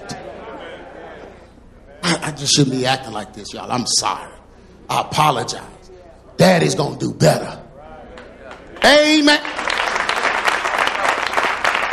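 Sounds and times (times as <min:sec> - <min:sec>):
speech: 0:02.3 - 0:05.8, 0:06.4 - 0:07.6, 0:08.8 - 0:09.5
small group clapping hands: 0:08.1 - 0:11.9.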